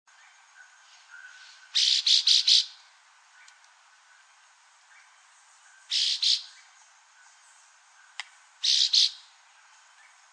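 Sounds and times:
chestnut-bellied Euphonia Euphonia pectoralis giving loud rasping bursts: 0:01.2 - 0:02.8, 0:05.9 - 0:06.6, 0:08.6 - 0:09.3.

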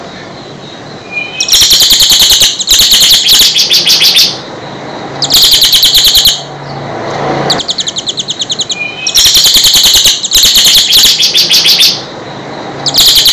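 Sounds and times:
bird song of rapid high chirps: 0:00.0 - 0:06.9, 0:07.5 - 0:13.3.

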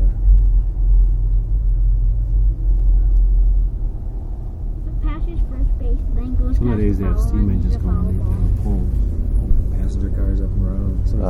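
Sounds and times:
truck driving past: 0:00.0 - 0:11.2
speech: 0:06.8 - 0:09.1, 0:09.9 - 0:11.2.

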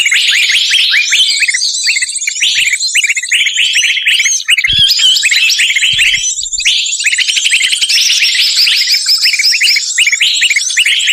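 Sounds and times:
bird lure calls chirping: 0:00.0 - 0:11.1
short low thumps: 0:05.8 - 0:06.7.

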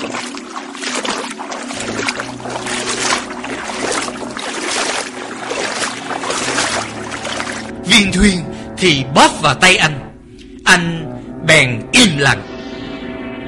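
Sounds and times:
person wading through water at a cave entrance: 0:00.0 - 0:07.8
speech: 0:08.0 - 0:10.1, 0:10.7 - 0:12.5.

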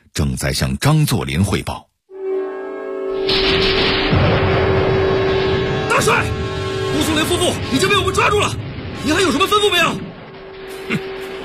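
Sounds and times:
speech: 0:00.2 - 0:01.9, 0:06.0 - 0:10.1, 0:10.9 - 0:11.1
explosion-like noise in radio drama battle sound effects: 0:03.1 - 0:11.4
booming gunfire in radio drama battle sound effects: 0:03.2 - 0:11.4
dense crackling and low thuds of battle sound effects: 0:03.2 - 0:11.4.

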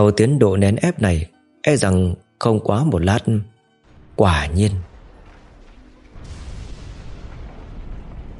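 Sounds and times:
speech: 0:00.0 - 0:03.5, 0:04.2 - 0:04.9
loud explosion sound effect: 0:03.8 - 0:08.3.

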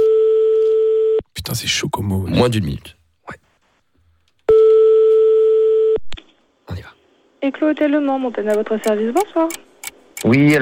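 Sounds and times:
telephone line tone while calling a hotel: 0:00.0 - 0:01.2, 0:04.5 - 0:06.0
speech: 0:01.5 - 0:03.4, 0:07.4 - 0:09.6, 0:10.2 - 0:10.6.

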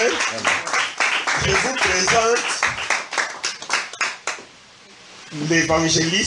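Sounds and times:
church congregation clapping: 0:00.0 - 0:04.5
speech: 0:00.1 - 0:00.8, 0:01.4 - 0:03.0, 0:05.3 - 0:06.2.

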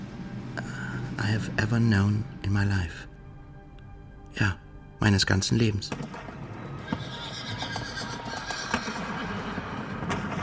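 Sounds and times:
speech: 0:00.6 - 0:03.1, 0:04.4 - 0:06.3
hooves striking the ground: 0:06.8 - 0:10.0
horse neighing: 0:06.8 - 0:10.1.

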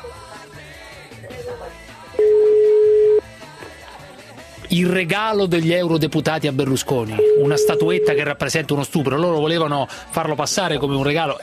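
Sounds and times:
telephone ringing unanswered with ringback beep: 0:02.2 - 0:03.2, 0:07.2 - 0:08.3
speech: 0:04.7 - 0:11.4.

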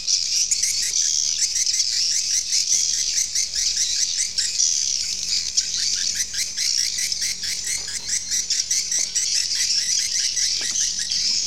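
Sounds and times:
swiftlet twittering calls: 0:00.2 - 0:11.4.

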